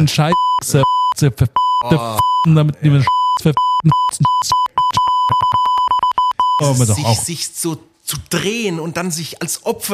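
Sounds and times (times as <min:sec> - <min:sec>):
speech: 0:00.0 - 0:04.6, 0:06.6 - 0:09.9
high-pitched electronic beep tone: 0:03.1 - 0:06.8.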